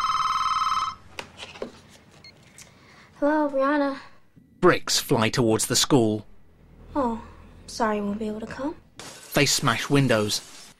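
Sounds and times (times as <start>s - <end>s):
telephone ringing on an outgoing call: 0.0s - 1.1s
speech: 3.2s - 6.3s, 6.9s - 10.6s.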